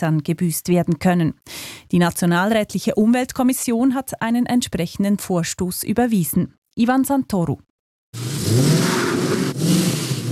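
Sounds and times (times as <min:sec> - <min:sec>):
speech: 0:00.0 - 0:08.9
car accelerating hard with engine revving: 0:08.2 - 0:10.3.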